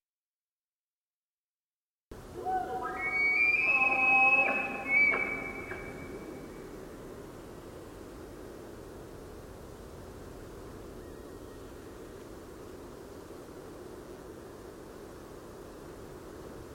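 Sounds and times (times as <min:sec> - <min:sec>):
quiet background hiss: 0:02.1 - 0:16.7
male Roosevelt elk bugling in a forest glade on the Olympic Peninsula: 0:02.5 - 0:06.0.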